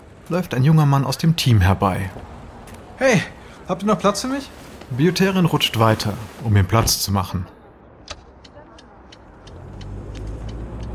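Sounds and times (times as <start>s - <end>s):
speech: 0.3s - 2.3s, 3.0s - 7.6s
sharp clicks and ticks: 8.0s - 10.9s
car engine idling and pulling away: 9.5s - 10.9s.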